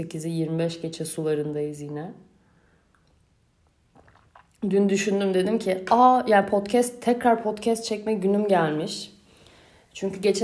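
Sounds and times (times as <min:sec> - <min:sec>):
speech: 0:00.0 - 0:02.3, 0:04.6 - 0:09.1, 0:10.0 - 0:10.4
swallow: 0:03.8 - 0:04.6
person sipping coffee: 0:03.9 - 0:04.6.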